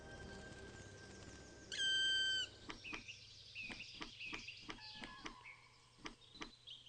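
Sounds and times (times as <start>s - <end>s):
quiet forest noise: 0.0s - 6.8s
black woodpecker calling: 1.2s - 6.8s
black woodpecker knocking: 2.6s - 6.6s.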